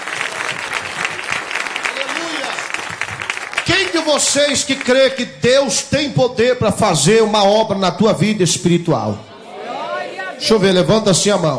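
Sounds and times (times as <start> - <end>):
church audience clapping: 0.0 - 5.4
speech: 4.0 - 9.3, 10.4 - 11.5.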